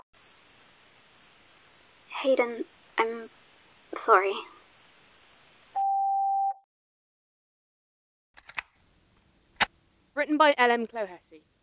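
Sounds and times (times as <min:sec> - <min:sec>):
speech: 0:02.2 - 0:03.4, 0:04.0 - 0:04.5, 0:10.2 - 0:11.6
loud steady electronic phone tone: 0:05.8 - 0:06.6
sharp clicks: 0:08.4 - 0:08.8, 0:09.6 - 0:09.8
crisp snap: 0:08.4 - 0:09.8.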